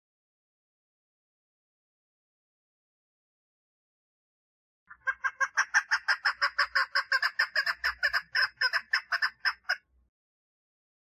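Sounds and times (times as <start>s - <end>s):
partridge song: 4.9s - 9.8s.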